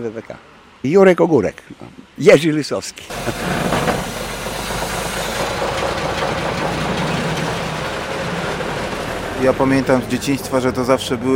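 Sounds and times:
speech: 0.0s - 4.1s, 9.4s - 11.3s
old bus engine rumbling: 3.1s - 11.3s.

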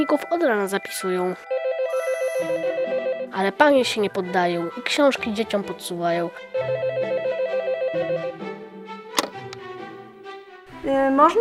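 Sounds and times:
speech: 0.0s - 1.6s, 2.4s - 7.2s, 10.8s - 11.3s
electronic telephone ring warbling in a fast trill: 1.3s - 3.5s, 6.6s - 8.4s
sharp click: 9.2s - 9.6s.

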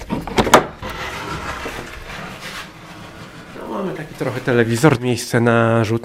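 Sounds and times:
brief door scrape: 0.0s - 5.2s
quiet steady room ambience: 0.0s - 6.0s
speech: 3.8s - 6.0s.

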